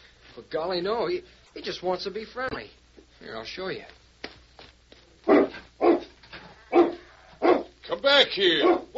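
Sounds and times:
speech: 0.4s - 4.0s, 8.0s - 8.9s
dog barking: 5.2s - 7.8s, 8.6s - 8.9s.

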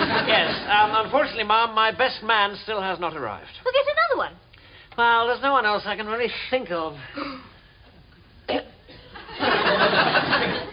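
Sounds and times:
laughter: 0.0s - 1.4s, 9.1s - 10.7s
speech: 0.6s - 4.4s, 5.0s - 7.5s, 8.5s - 8.8s
man clearing his throat: 8.5s - 9.2s.

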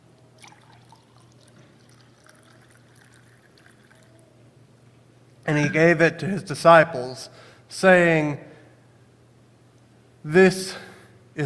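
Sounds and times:
low steady hum: 0.0s - 11.4s
wine pouring into a cup: 0.4s - 4.3s
speech: 5.5s - 8.5s, 10.2s - 11.4s.

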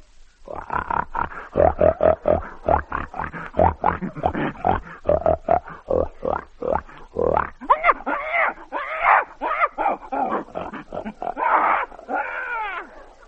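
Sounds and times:
pig grunting: 0.5s - 13.0s.

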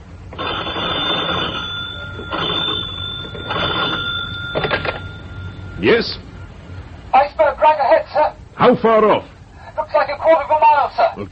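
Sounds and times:
low hum: 0.0s - 11.3s
telephone bell ringing: 0.3s - 6.6s
speech: 5.8s - 6.2s, 8.7s - 9.3s, 9.9s - 11.3s.

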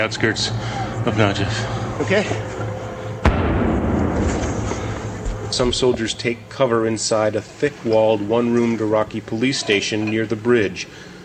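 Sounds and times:
speech: 0.0s - 2.7s, 5.5s - 11.1s
heavy roar and rumble: 0.1s - 6.9s
rocket-propelled grenade blast fired by militiamen: 3.2s - 5.9s.

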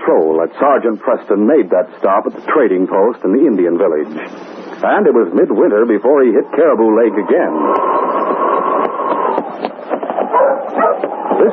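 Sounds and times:
steady rushing noise: 0.0s - 11.5s
speech: 0.1s - 8.1s
sled dogs barking and yipping: 7.8s - 11.5s.

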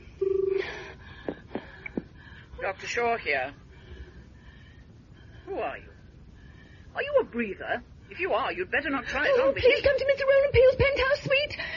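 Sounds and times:
telephone ringing tone on the line after dialing: 0.2s - 0.7s
speech: 2.7s - 3.6s, 5.5s - 5.9s, 7.0s - 11.7s.

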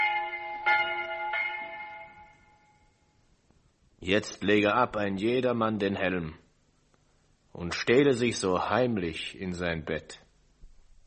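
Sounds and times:
church bell ringing: 0.0s - 3.2s
speech: 4.0s - 6.4s, 7.6s - 10.2s.

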